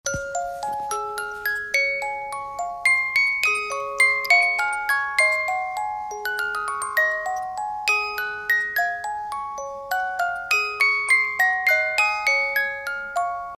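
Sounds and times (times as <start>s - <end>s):
music box melody: 0.1s - 13.5s.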